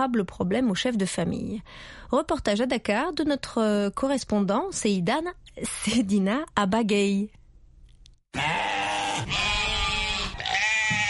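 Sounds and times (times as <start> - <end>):
speech: 0.0 - 7.4
sheep bleating loudly at a livestock market: 8.3 - 11.0
busy crowd of animals murmuring at a livestock market: 8.4 - 11.0.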